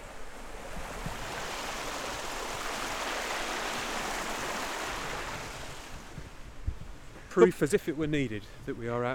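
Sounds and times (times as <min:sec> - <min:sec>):
babbling brook tumbling over a small waterfall in countryside: 0:00.0 - 0:05.9
speech: 0:07.4 - 0:09.1.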